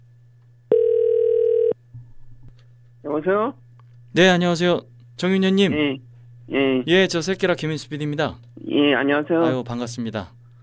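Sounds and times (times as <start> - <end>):
low constant hum: 0.0 - 10.6
telephone ringback tone: 0.7 - 1.8
speech: 3.1 - 10.4.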